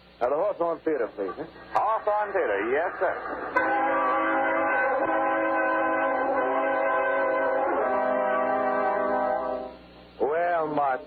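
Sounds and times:
speech: 0.2s - 4.3s, 10.7s - 11.0s
train horn blaring in a harmonic chord: 3.6s - 9.8s.

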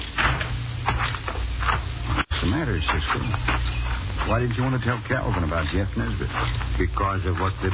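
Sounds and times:
back door opening and closing: 0.1s - 2.3s
speech: 2.8s - 3.6s, 4.3s - 7.7s.

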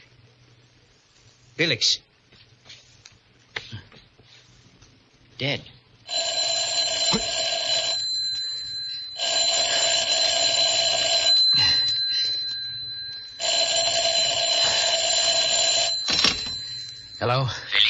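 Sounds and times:
speech: 1.6s - 2.1s, 5.4s - 5.7s, 17.2s - 17.6s
telephone bell ringing: 6.1s - 17.8s.

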